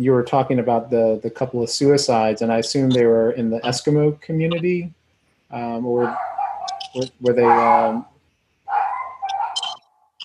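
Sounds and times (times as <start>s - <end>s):
speech: 0.0s - 6.3s, 6.9s - 8.1s
dog whining: 6.0s - 8.0s, 8.7s - 10.2s
dogs barking: 6.0s - 8.0s, 8.7s - 9.8s.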